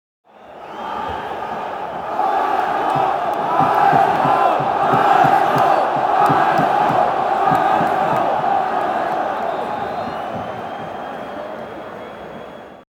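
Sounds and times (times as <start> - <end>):
stadium fans chanting and singing: 0.3 - 12.8.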